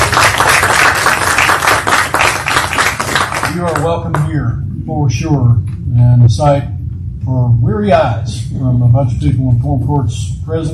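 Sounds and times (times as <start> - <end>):
crowd applauding: 0.0 - 4.3
speech: 3.6 - 10.7.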